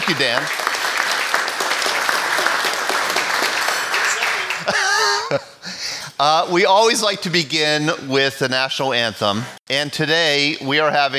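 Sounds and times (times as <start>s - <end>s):
audience applauding: 0.0s - 5.2s
speech: 0.1s - 0.7s, 4.7s - 11.1s.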